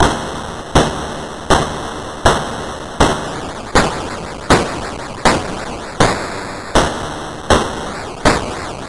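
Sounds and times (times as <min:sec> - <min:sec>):
banging: 0:01.5 - 0:08.8.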